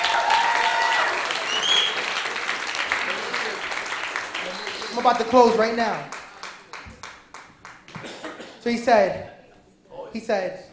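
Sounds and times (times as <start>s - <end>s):
whistles and cheers: 0.0s - 2.2s, 4.3s - 5.2s
audience applauding: 0.0s - 8.1s
speech: 5.0s - 6.2s, 8.6s - 9.3s, 10.1s - 10.7s.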